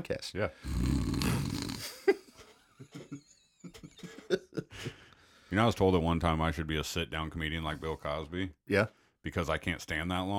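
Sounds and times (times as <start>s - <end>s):
speech: 0.0s - 2.2s, 5.5s - 10.3s
person imitating snoring: 0.6s - 2.0s
laughter: 1.8s - 5.0s.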